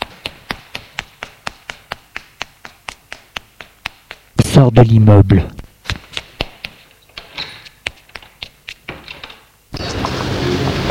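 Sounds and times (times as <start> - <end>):
footsteps hurrying down a staircase: 0.0 - 4.7, 5.6 - 9.2
speech: 4.6 - 5.6.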